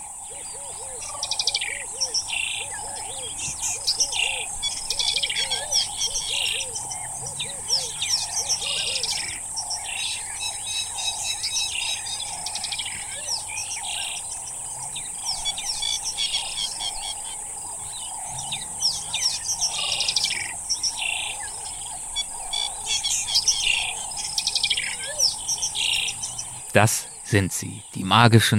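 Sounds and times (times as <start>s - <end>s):
high insect drone: 0.0s - 28.0s
dawn bird chorus in grass savanna: 0.0s - 28.2s
speech: 26.8s - 28.5s.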